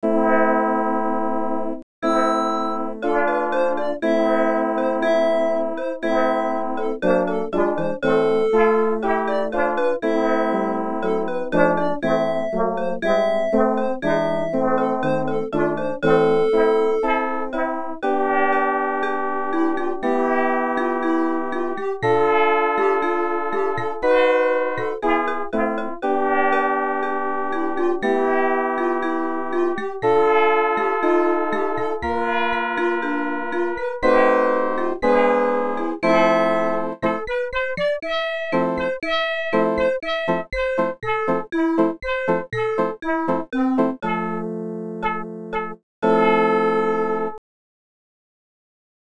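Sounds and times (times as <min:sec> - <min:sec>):
synthetic music made with Csound: 0:00.0 - 0:47.4.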